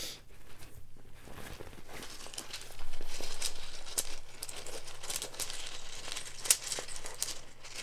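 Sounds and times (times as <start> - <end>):
soft rustling: 0.3 - 7.8
rune stones clicking and rattling while shuffled to draw one: 2.1 - 7.8.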